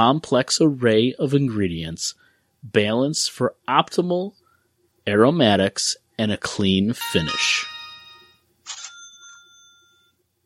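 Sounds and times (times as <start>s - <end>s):
speech: 0.0s - 4.4s, 5.0s - 7.7s
electronic beeps: 7.0s - 8.4s.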